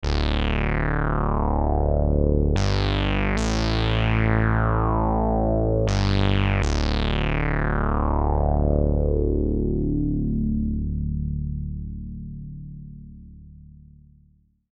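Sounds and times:
resonator bass: 0.0s - 14.5s.

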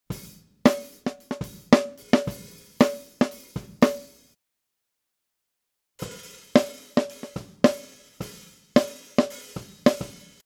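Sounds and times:
snare drum recorded with SM57 and e905 microphones: 0.1s - 4.2s, 6.0s - 10.4s.

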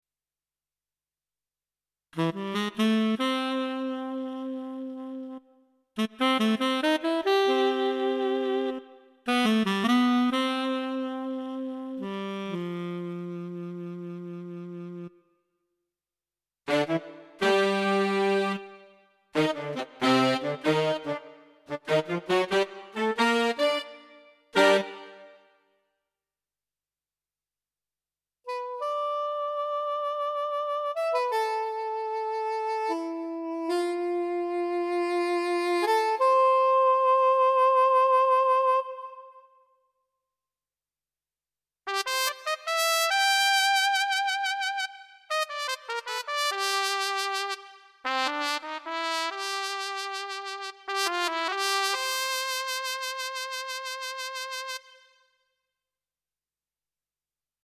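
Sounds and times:
brass and woodwind instruments: 2.2s - 15.2s, 16.7s - 25.5s, 28.5s - 39.6s, 41.9s - 55.3s.

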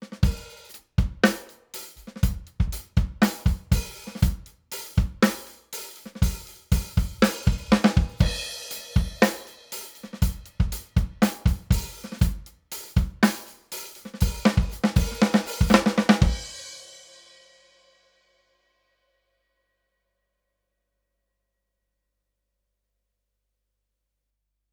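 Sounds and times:
drums: 0.0s - 18.0s.

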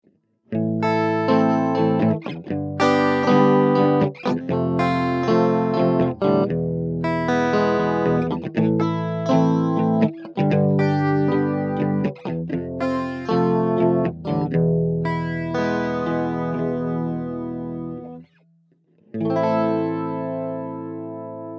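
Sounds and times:
Classic FX guitar with Studio D Chorus: 0.5s - 18.4s, 19.0s - 21.5s.

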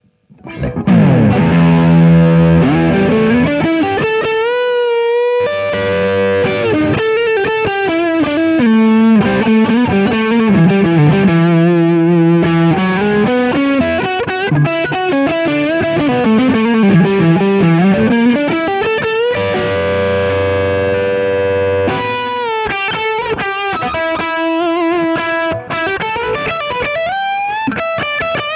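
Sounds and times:
Gretsch electric guitar lead: 0.3s - 28.5s.

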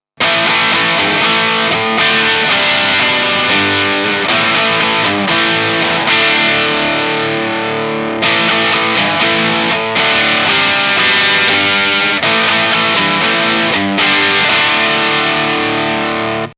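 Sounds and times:
distorted guitar through 2x12 cabinet captured with ribbon microphone: 0.0s - 16.5s.

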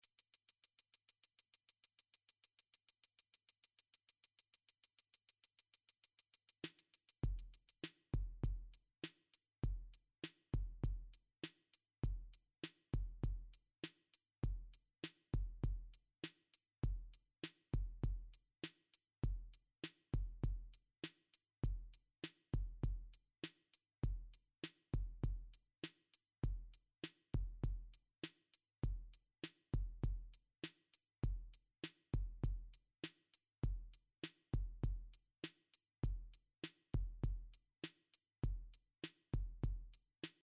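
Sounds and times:
MIDI drums through effects unit: 0.1s - 40.4s.

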